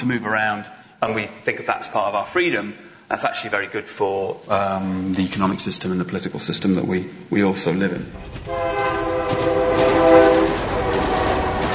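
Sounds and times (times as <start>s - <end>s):
speech: 0.0s - 9.9s
steady rail noise: 8.0s - 11.7s
train rumbling past: 8.1s - 11.7s.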